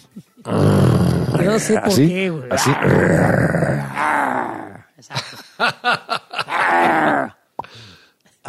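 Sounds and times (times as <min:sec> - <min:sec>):
speech: 0:00.4 - 0:00.8, 0:01.4 - 0:03.9, 0:05.0 - 0:06.2
person imitating growling grunts: 0:00.4 - 0:01.9, 0:02.5 - 0:04.9, 0:06.4 - 0:07.4
laughter: 0:05.0 - 0:07.3.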